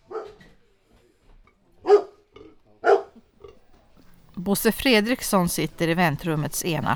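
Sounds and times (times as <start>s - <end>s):
dog barking at a small-animal veterinary clinic in Sweden: 0.0s - 0.5s, 1.8s - 2.2s, 2.8s - 3.2s
speech: 4.4s - 6.9s.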